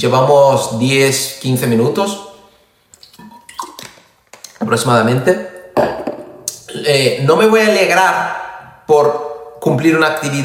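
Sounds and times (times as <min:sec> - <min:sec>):
speech: 0:00.0 - 0:02.3, 0:04.6 - 0:06.0, 0:06.8 - 0:10.4
person sipping water: 0:02.9 - 0:04.6.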